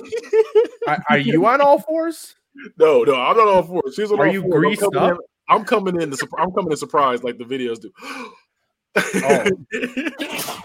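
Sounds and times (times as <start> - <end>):
laughter: 0.0 - 1.4, 9.0 - 10.4
speech: 0.9 - 10.6
person sneezing: 10.2 - 10.6.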